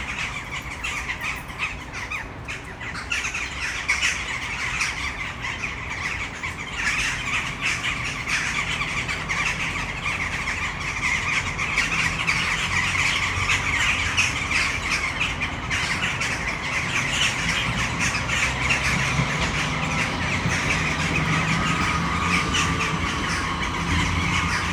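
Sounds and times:
flock of western jackdaws roosting in a city centre tree calling: 0.0 - 24.7
low traffic rumble in the city centre of Brno: 0.0 - 24.7.

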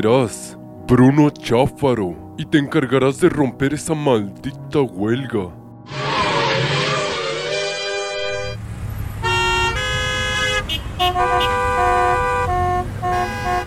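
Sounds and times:
speech: 0.0 - 6.0
car horns honking in protest against a student strike: 5.9 - 8.6, 9.2 - 13.6.

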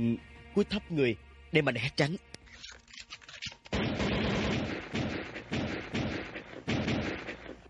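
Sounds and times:
speech: 0.0 - 2.3
gunshots fired at a person in a bedroom: 3.7 - 7.6.

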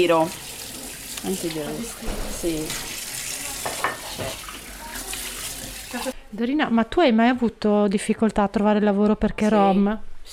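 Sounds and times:
speech: 0.0 - 0.5, 1.2 - 2.9, 4.2 - 4.4, 5.9 - 10.3
water running while washing cups, plates and glasses: 0.0 - 6.2
cups, plates and glasses clattering while being washed: 1.9 - 4.7.

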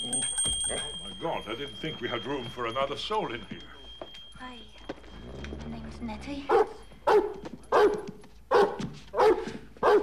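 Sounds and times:
speech: 1.2 - 3.6, 6.0 - 6.8
dog barking: 6.5 - 10.0.

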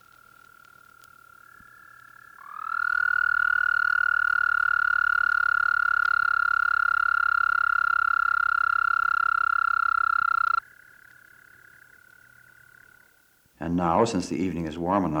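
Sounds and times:
common toads trilling in the shallows: 0.0 - 13.4
speech: 13.7 - 15.1.

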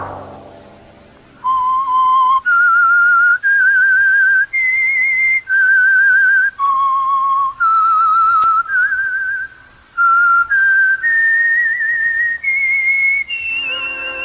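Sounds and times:
whistled signal tune melody: 1.4 - 14.2.

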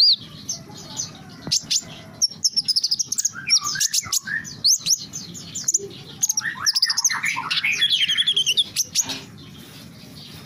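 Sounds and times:
small bird twittering: 0.0 - 10.4.

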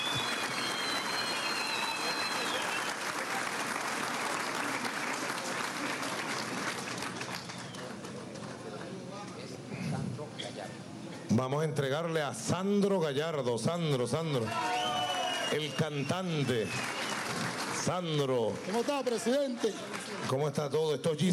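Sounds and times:
crowd applauding at a government ceremony honouring military women: 0.0 - 9.0, 14.5 - 20.8
speech: 11.4 - 14.7, 15.5 - 17.0, 17.9 - 21.3.

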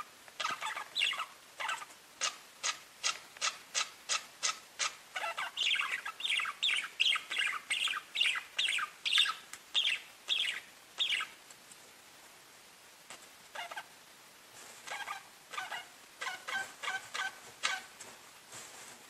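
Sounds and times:
budgerigar chirps and warbling scratchy chatter: 0.4 - 11.4, 13.6 - 13.9, 14.9 - 17.9.

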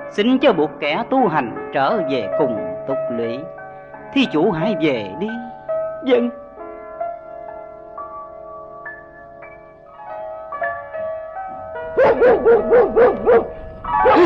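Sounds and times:
speech: 0.1 - 6.4
dog barking: 12.0 - 14.2.

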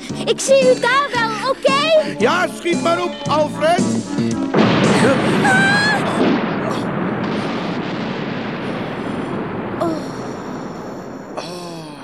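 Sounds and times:
speech: 0.3 - 1.6, 2.2 - 5.8
explosion setting off a huge fire in an animated story: 4.5 - 12.0.

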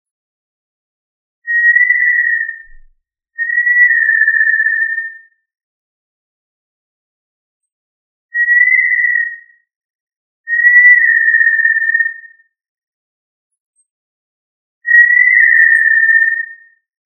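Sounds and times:
tinamou whistles: 1.5 - 2.8, 3.4 - 5.2, 8.4 - 9.5, 10.5 - 12.3, 14.8 - 16.7.

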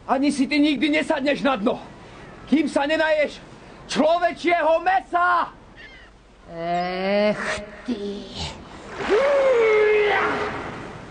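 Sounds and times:
speech: 0.1 - 1.9, 2.5 - 5.6, 6.5 - 10.6
large fish splashing sea water: 8.8 - 11.0.

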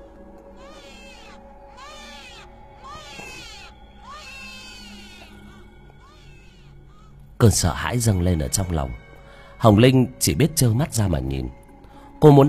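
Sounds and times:
newborn baby crying: 0.5 - 7.2
speech: 7.4 - 9.0, 9.6 - 11.6, 12.2 - 12.4.

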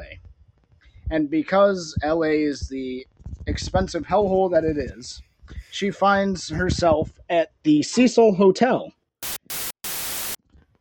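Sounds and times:
speech: 1.1 - 9.0
harsh broadband static bursts: 9.2 - 10.4.

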